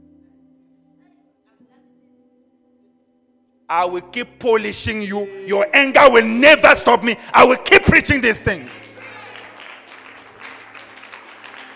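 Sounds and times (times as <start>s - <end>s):
speech: 3.7s - 8.8s
audience clapping: 8.5s - 11.7s.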